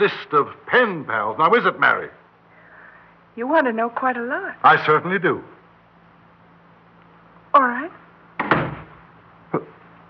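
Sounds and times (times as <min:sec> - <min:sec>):
speech: 0:00.0 - 0:02.2, 0:03.4 - 0:05.6, 0:07.6 - 0:08.0
door closing: 0:08.4 - 0:09.0.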